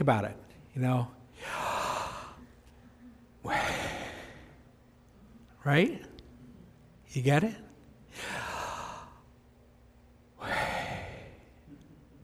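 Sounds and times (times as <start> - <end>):
speech: 0.0 - 1.7, 5.6 - 6.1, 7.1 - 7.6
exaggerated breathing in and out: 1.4 - 2.4, 3.4 - 4.6, 8.1 - 9.2, 10.4 - 11.6.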